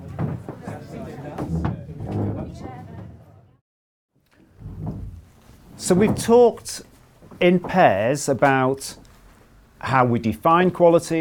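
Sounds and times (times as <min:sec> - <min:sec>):
chairs scraping and clattering across the floor: 0:00.0 - 0:03.4, 0:04.4 - 0:09.5
speech: 0:05.9 - 0:09.0, 0:09.8 - 0:11.1.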